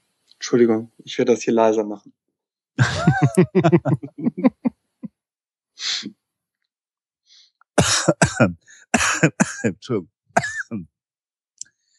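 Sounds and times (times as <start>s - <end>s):
speech: 0.5s - 2.2s, 2.8s - 4.6s, 7.8s - 10.9s
laughter: 2.8s - 4.7s
throat clearing: 7.8s - 10.9s.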